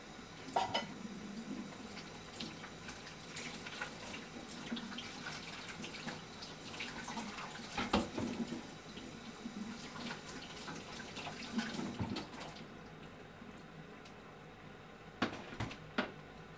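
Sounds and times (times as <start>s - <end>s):
running water filling a sink: 0.0s - 12.8s.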